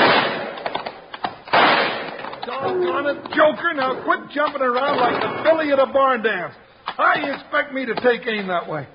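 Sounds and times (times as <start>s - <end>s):
rifle shots fired at night: 0.0s - 2.4s
speech: 2.4s - 8.9s.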